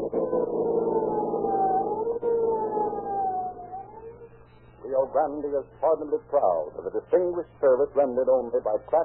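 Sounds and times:
police car siren wailing: 0.0 - 6.0
speech: 5.2 - 9.0.

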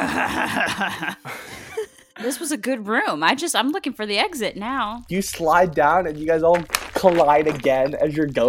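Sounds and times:
person imitating a dragonborn character's growling giggle: 0.0 - 1.2
speech: 0.0 - 1.4, 2.2 - 8.4.

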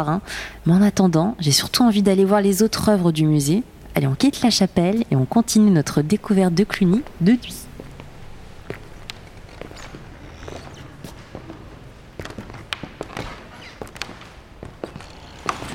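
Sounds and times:
speech: 0.0 - 7.7
footsteps on creaking wooden parquet floor in the Cluny museum: 7.0 - 15.7.

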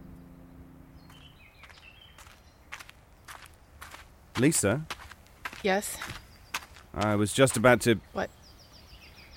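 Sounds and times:
woman's footsteps at a walking pace: 1.0 - 7.7
speech: 4.4 - 5.0, 5.6 - 6.2, 7.0 - 8.4.

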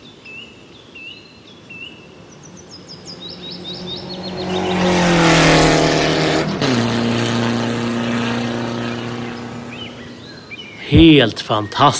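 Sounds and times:
rally car engine roaring and revving: 2.6 - 10.3
speech: 11.0 - 11.9.

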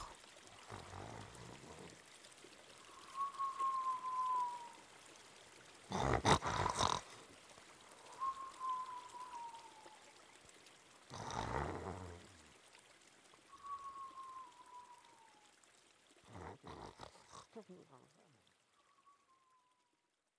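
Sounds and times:
loud exaggerated snoring: 0.0 - 2.0, 5.9 - 7.2, 11.1 - 12.2, 16.3 - 17.5
river flowing: 0.0 - 19.0
thin sliding whistle: 2.9 - 4.7, 8.1 - 9.7, 13.6 - 15.1.

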